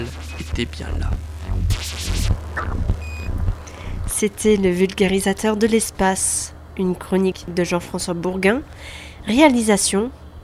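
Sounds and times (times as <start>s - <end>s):
radio transmitter of a small satellite beeping: 0.0s - 5.1s
brief steady tone: 0.0s - 7.5s
low rumbling drone: 0.0s - 7.6s
speech: 0.5s - 2.9s, 4.2s - 10.4s.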